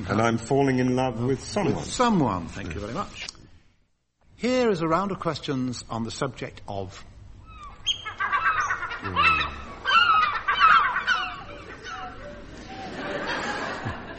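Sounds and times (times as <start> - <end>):
speech: 0.0 - 3.3, 4.4 - 7.1, 9.0 - 9.6
seagulls calling: 7.4 - 13.2
laughter: 9.0 - 9.8, 11.6 - 14.1.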